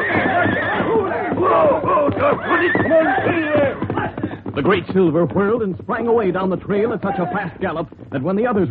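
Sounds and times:
white stallion whinnying shrilly and snorting as it rears: 0.0s - 4.4s
speech: 4.6s - 8.6s.

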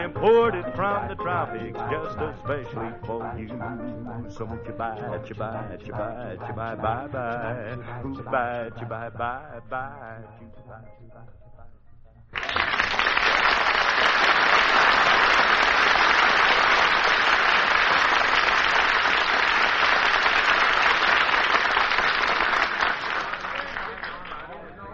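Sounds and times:
speech: 0.1s - 11.4s
large crowd applauding: 12.4s - 24.7s.

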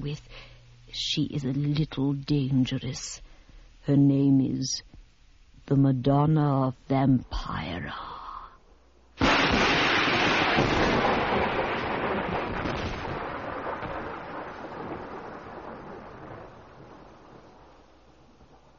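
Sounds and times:
speech: 0.0s - 3.3s, 3.9s - 5.0s, 5.7s - 8.2s
thunder crash: 9.2s - 17.7s
heavy rain falling at night on a mansion: 9.2s - 18.7s.

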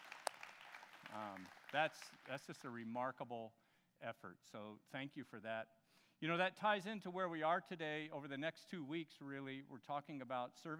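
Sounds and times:
audience applause: 0.0s - 2.4s
speech: 1.1s - 10.7s.

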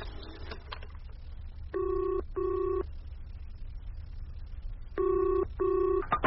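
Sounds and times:
telephone line ringing in double rings: 1.8s - 2.9s, 5.0s - 6.1s.

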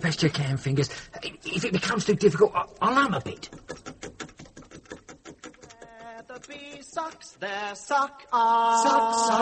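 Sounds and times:
speech: 0.0s - 3.7s, 7.0s - 9.4s
chisel and mallet chipping at a door: 3.0s - 7.7s.

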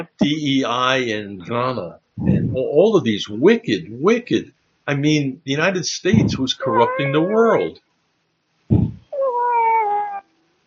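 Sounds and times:
speech: 0.0s - 7.8s
cat meowing: 6.1s - 7.8s, 8.7s - 10.3s.

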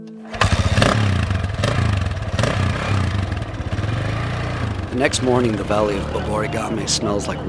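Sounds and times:
motorcycle engine revving: 0.2s - 7.4s
speech: 5.0s - 7.4s.

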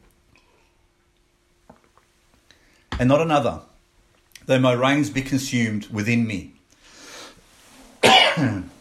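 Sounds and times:
speech: 3.0s - 3.7s, 4.5s - 6.6s, 8.4s - 8.7s
person coughing: 8.0s - 8.7s.

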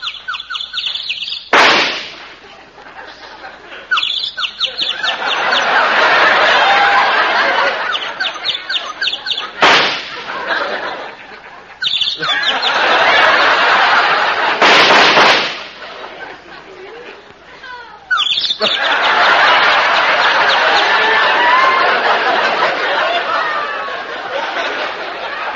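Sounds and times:
small bird chirping in a tree: 0.0s - 1.5s, 3.9s - 5.7s, 7.9s - 9.6s, 11.8s - 12.8s, 18.1s - 19.0s
sharp loud bangs: 1.5s - 2.4s, 9.3s - 10.6s, 12.7s - 16.0s
laughter: 2.2s - 25.5s.

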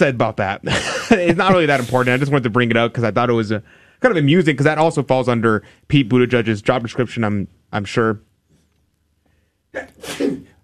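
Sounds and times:
speech: 0.0s - 8.3s, 9.7s - 10.4s
loud sneeze: 9.7s - 10.6s.

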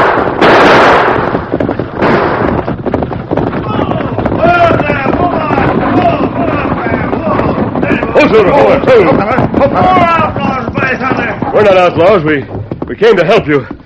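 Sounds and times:
gunfire in a western radio drama stagecoach holdup shootout: 0.0s - 12.2s
excited voices: 3.5s - 13.6s
speech: 8.3s - 10.3s, 10.9s - 13.8s.

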